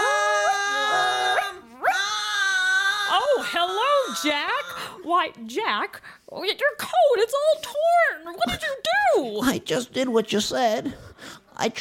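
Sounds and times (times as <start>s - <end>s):
puppy whimpering and howling: 0.0s - 4.7s
speech: 3.4s - 11.7s.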